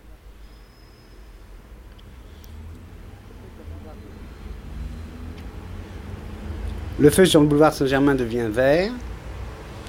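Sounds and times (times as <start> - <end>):
traffic: 0.0 - 9.8
fruit and vegetable truck engine rumbling on a city street: 1.4 - 7.6
speech: 7.0 - 9.1.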